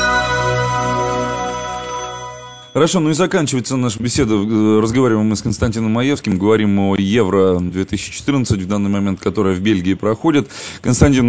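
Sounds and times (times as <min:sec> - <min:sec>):
telephone ringing for a call to an expert during a radio marathon: 0:00.0 - 0:03.0
speech: 0:02.8 - 0:11.2.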